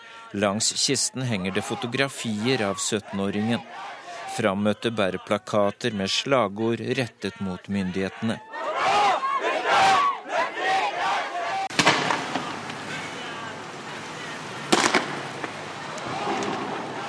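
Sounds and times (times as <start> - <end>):
protest procession crowd chanting slogans in a Persian Gulf island state: 0.0 - 17.0
speech: 0.3 - 9.0
sharp bangs: 11.7 - 12.6, 14.7 - 15.6.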